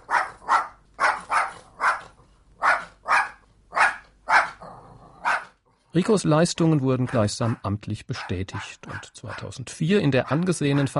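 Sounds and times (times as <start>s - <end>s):
dog barking: 0.0s - 4.6s, 5.2s - 5.6s, 7.1s - 9.5s
speech: 6.0s - 10.9s.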